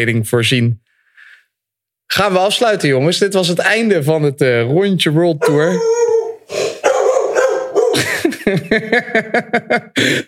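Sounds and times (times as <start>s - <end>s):
speech: 0.0s - 0.8s, 2.1s - 6.1s, 8.0s - 10.2s
dog howling: 5.4s - 8.0s
laughter: 7.8s - 10.2s.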